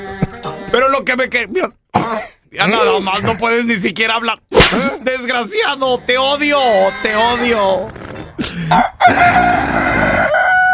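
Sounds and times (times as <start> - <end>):
speech: 0.2 - 10.0
rooster crowing: 8.7 - 10.7.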